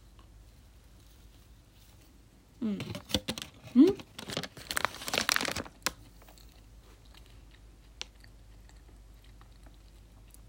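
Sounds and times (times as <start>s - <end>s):
crinkling: 0.0s - 10.4s
speech: 2.6s - 3.0s
chewing chocolate-covered crab-shaped bread: 5.2s - 10.4s.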